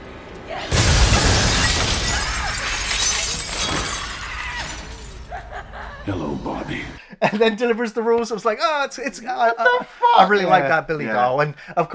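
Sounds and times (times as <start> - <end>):
loud crash of shattering glass from a film scene: 0.7 - 5.4
tinkling scattering glass shards and debris settling: 1.6 - 5.3
laughter: 5.2 - 6.4, 9.2 - 11.4
speech: 6.1 - 11.9.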